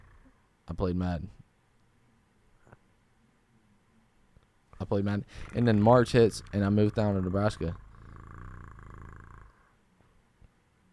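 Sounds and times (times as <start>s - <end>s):
person imitating a cat purr: 0.0s - 0.4s, 5.4s - 9.7s
speech: 0.7s - 1.4s, 4.8s - 7.8s.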